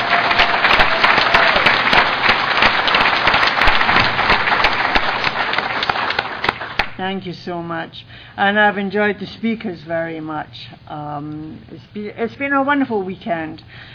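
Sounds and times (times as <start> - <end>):
crowd clapping steadily: 0.0 - 7.0
speech: 7.0 - 13.9.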